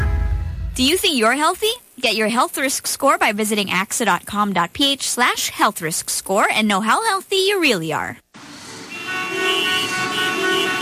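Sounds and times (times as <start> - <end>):
speech: 0.8 - 8.2
car horns honking: 8.6 - 10.8.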